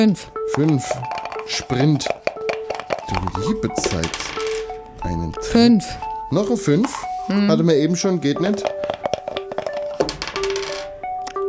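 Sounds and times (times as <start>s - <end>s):
speech: 0.0s - 2.2s, 3.1s - 8.8s
dice clattering and rolling across a hard tabletop: 0.6s - 4.7s, 8.6s - 11.0s.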